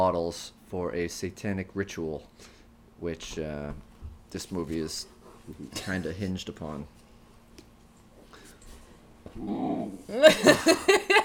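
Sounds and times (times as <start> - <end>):
speech: 0.0 - 7.0, 9.4 - 11.2
dog grumbling when moved off a couch: 9.4 - 10.3
laughter: 10.1 - 11.2.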